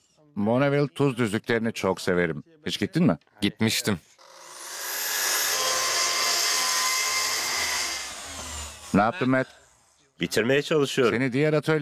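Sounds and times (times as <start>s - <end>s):
speech: 0.3s - 4.1s, 9.0s - 9.6s, 10.2s - 11.8s
power tool cutting through the back panel of a door: 4.2s - 9.1s.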